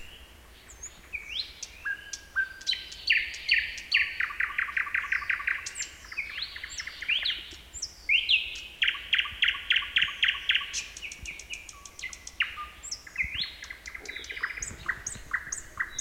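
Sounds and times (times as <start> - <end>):
marsh warbler singing: 0.0 - 15.9.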